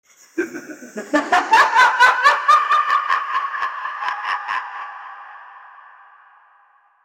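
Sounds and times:
person laughing: 0.4 - 5.5.

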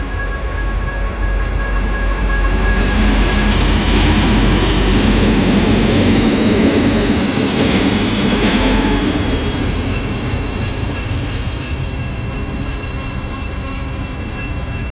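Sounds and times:
train stopping violently, braking: 0.0 - 14.9.

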